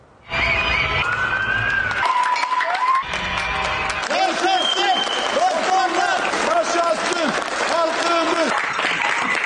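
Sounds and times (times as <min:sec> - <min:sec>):
whistles: 0:00.2 - 0:03.1, 0:04.4 - 0:05.4
people cheering: 0:00.3 - 0:09.4
applause from many people on balconies for health workers: 0:00.8 - 0:09.4.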